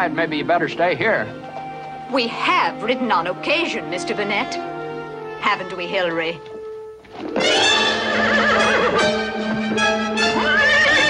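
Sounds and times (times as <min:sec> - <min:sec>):
speech: 0:00.0 - 0:04.7, 0:05.4 - 0:06.5
horse rearing up on a street and whinnying: 0:07.1 - 0:09.5, 0:10.2 - 0:11.0.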